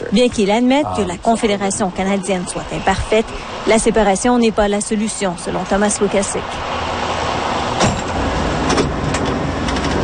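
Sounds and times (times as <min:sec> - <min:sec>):
campaign bus engine rumbling while touring the province: 0:00.0 - 0:10.0
speech: 0:00.1 - 0:06.8.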